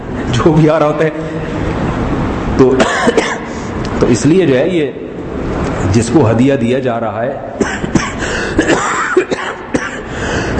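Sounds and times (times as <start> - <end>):
speech: 0.4 - 1.8, 2.6 - 3.3, 4.0 - 7.6
person clearing throat: 2.8 - 3.5, 7.6 - 10.5
person with a several-day cough coughing: 2.8 - 3.5, 7.6 - 10.5.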